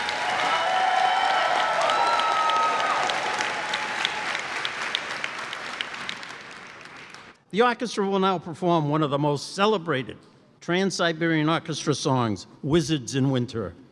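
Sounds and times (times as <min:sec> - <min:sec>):
crowd applauding: 0:00.0 - 0:07.4
speech: 0:07.5 - 0:13.8.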